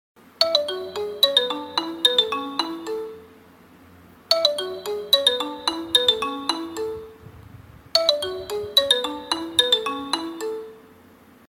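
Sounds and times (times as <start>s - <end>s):
Nokia two-tone mobile phone ringtone: 0.4s - 3.4s, 4.3s - 7.2s, 7.9s - 11.0s.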